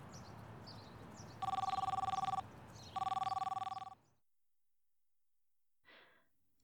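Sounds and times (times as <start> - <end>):
electronic ringback tones of an outgoing phone call: 1.4 - 4.0.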